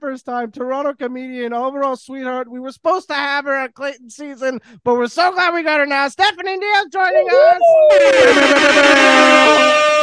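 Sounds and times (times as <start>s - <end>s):
speech: 0.1s - 10.0s
DJ air horn blaring: 7.9s - 10.0s.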